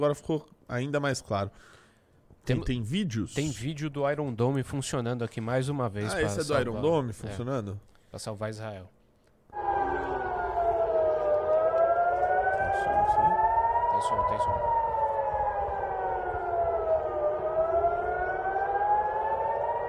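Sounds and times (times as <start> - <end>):
speech: 0.0 - 1.8, 2.4 - 9.0, 14.0 - 14.8
air raid siren wailing in Israel during an Iranian attack: 9.5 - 19.8.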